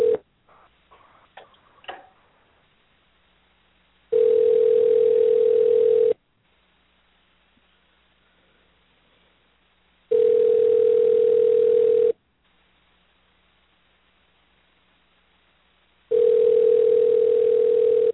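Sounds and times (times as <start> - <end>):
buzzing phone line ringback tones: 0.0 - 0.2, 4.1 - 6.2, 10.1 - 12.2, 16.1 - 18.1.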